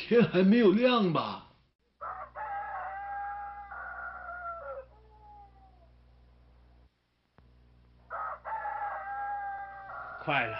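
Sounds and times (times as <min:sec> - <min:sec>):
steady low hum: 0:00.0 - 0:10.5
speech: 0:00.1 - 0:01.5, 0:10.3 - 0:10.5
rooster crowing before daybreak: 0:02.0 - 0:06.0, 0:08.0 - 0:10.5.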